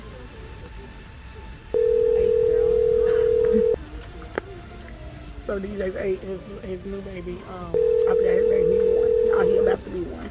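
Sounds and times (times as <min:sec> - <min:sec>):
quiet noise: 0:00.0 - 0:10.2
telephone ringback tone while a call is placed: 0:01.8 - 0:03.8, 0:07.8 - 0:09.8
speech: 0:05.5 - 0:10.2.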